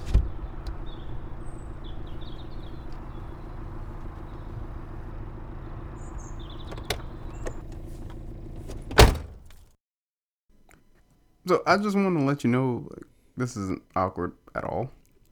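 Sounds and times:
steady low rumble of a car: 0:00.0 - 0:09.6
loud car door slam: 0:02.0 - 0:09.6
clicks and shuffling of people getting into a car: 0:06.4 - 0:09.6
speech: 0:11.5 - 0:15.0.

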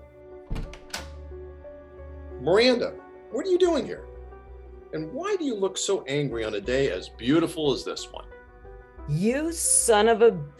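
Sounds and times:
door latch thumps: 0:00.4 - 0:01.2
speech: 0:02.4 - 0:04.1, 0:04.9 - 0:08.3, 0:09.1 - 0:10.5.

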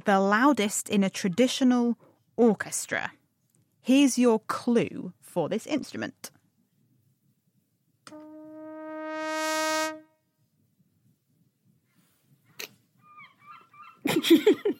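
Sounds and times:
speech: 0:00.0 - 0:03.2, 0:03.8 - 0:06.4, 0:14.2 - 0:14.7
sustained horn-like note: 0:08.1 - 0:10.2
seagull crying: 0:13.0 - 0:14.1
laughter: 0:14.0 - 0:14.7.

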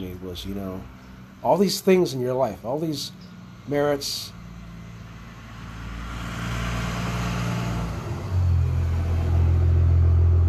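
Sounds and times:
speech: 0:00.0 - 0:04.4
truck driving past with engine rumble: 0:00.0 - 0:10.4.

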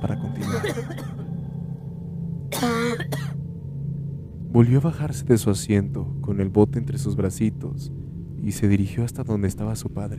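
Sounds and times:
low hum: 0:00.0 - 0:10.1
girl coughing from pungent fumes: 0:00.4 - 0:01.3, 0:02.5 - 0:03.4
speech: 0:04.6 - 0:10.1.

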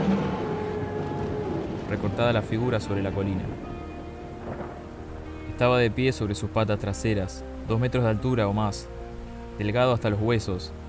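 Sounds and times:
thunder rumble: 0:00.0 - 0:06.2
steady rainfall: 0:00.0 - 0:10.8
speech: 0:01.9 - 0:03.7, 0:05.6 - 0:09.0, 0:09.6 - 0:10.8.

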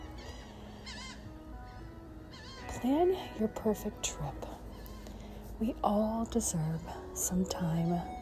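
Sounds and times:
seagulls giving squawking laughing cries: 0:00.0 - 0:05.4
speech: 0:02.8 - 0:04.5, 0:05.6 - 0:08.2.

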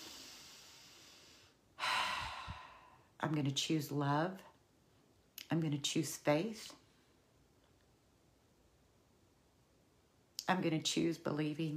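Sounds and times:
deep breathing as a calming exercise: 0:00.0 - 0:03.2
speech: 0:03.2 - 0:04.5, 0:05.5 - 0:06.8, 0:10.5 - 0:11.7.

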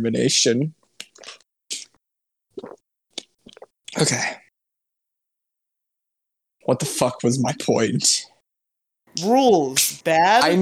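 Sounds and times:
speech: 0:00.0 - 0:01.4, 0:04.0 - 0:04.4, 0:06.7 - 0:08.3, 0:09.2 - 0:10.6
person drinking water with gulping swallowing sounds: 0:01.0 - 0:04.5.

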